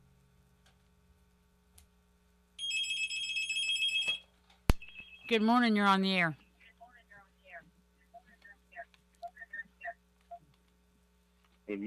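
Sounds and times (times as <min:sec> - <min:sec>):
low steady hum: 0:00.0 - 0:11.8
telephone ringing with an electronic trill: 0:02.6 - 0:04.3
speech: 0:05.3 - 0:06.4.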